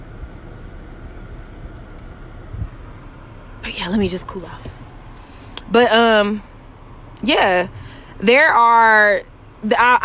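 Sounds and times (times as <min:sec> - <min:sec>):
air conditioner running: 0:00.0 - 0:10.0
speech: 0:03.8 - 0:04.8, 0:05.7 - 0:06.5, 0:07.2 - 0:10.0.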